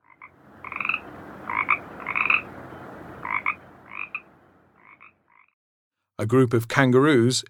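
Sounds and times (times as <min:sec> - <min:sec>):
steady hiss: 0:00.0 - 0:04.8
frog croaking: 0:00.0 - 0:05.6
speech: 0:06.2 - 0:07.4.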